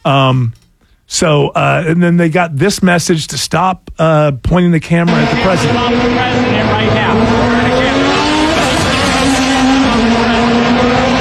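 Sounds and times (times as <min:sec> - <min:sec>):
speech: 0:00.0 - 0:07.6
indistinct voices: 0:05.1 - 0:11.1
loud car engines roaring with a rising whine: 0:05.1 - 0:11.1.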